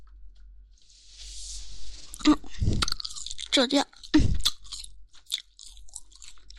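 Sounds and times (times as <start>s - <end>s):
crispy skin being bitten and chewed: 2.1s - 6.5s
speech: 3.6s - 4.3s.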